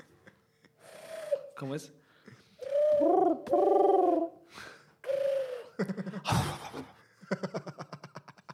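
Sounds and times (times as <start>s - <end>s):
speech: 1.6s - 2.0s, 5.8s - 6.4s
people imitating pigeon cooing: 2.6s - 4.4s, 5.0s - 6.0s.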